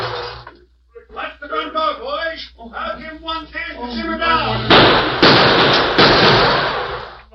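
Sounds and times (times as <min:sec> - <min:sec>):
gunfire sound effect in a radio drama: 0:04.7 - 0:07.2.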